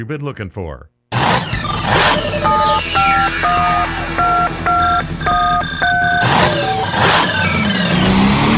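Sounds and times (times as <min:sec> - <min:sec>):
speech: 0:00.0 - 0:05.8
loud engine revving: 0:01.1 - 0:08.5
telephone dialing tones: 0:02.1 - 0:07.2.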